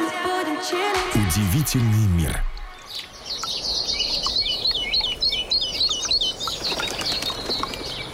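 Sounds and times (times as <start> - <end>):
speech: 0.6 - 3.1
chorus of birds chirping and trilling in spring: 2.0 - 8.1.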